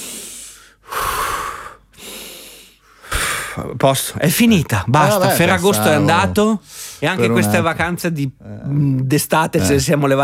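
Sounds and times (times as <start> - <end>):
exaggerated deep heavy breathing: 0.0 - 3.6
speech: 3.6 - 10.2.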